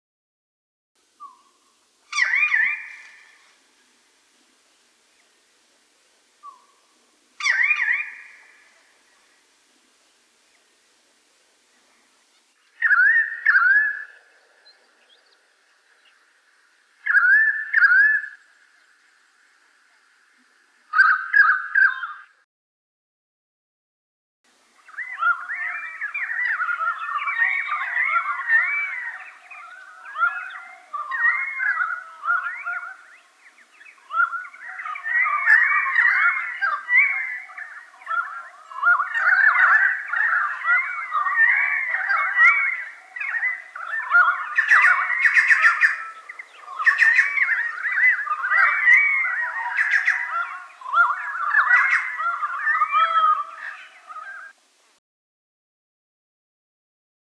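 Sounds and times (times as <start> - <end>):
pied currawong: 1.2 - 3.6, 6.4 - 9.3, 12.3 - 15.4, 17.0 - 18.5, 20.9 - 22.4, 24.8 - 54.6.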